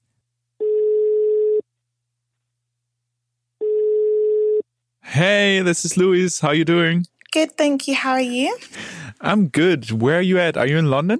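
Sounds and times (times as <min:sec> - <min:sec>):
ringback tone of an outgoing telephone call: 0:00.6 - 0:01.6, 0:03.6 - 0:04.6
speech: 0:05.2 - 0:11.1.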